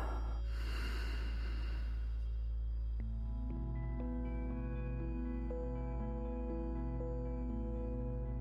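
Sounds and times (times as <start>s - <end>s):
deep breath drawn and released during a guided breathing exercise: 0.0s - 2.5s
quiet sustained ambient music tones: 0.0s - 8.4s.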